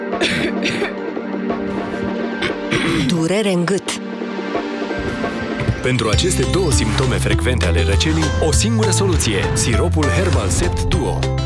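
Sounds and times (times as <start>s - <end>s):
person coughing in short harsh bursts: 0.2s - 1.0s, 2.4s - 3.3s
steady tonal background: 0.9s - 7.1s
speech: 2.7s - 4.0s, 5.8s - 11.4s.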